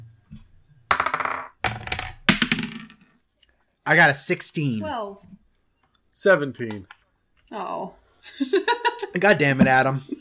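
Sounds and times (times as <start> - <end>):
d20 dice clattering and rolling across a hard table: 0.9 - 3.2
speech: 3.9 - 5.4, 6.2 - 10.1
laughter: 8.2 - 10.1.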